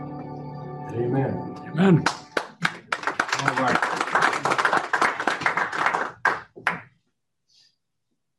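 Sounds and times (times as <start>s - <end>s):
speech: 0.9s - 2.2s
light scattered applause from a small crowd: 2.1s - 6.9s.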